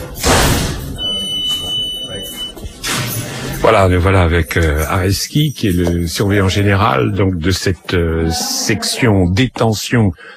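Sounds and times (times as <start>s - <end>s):
heavy metal prison door clanking shut in Bois d'Arcy prison, France: 0.0s - 1.0s
faint murmur: 0.0s - 10.1s
speech: 3.7s - 10.3s.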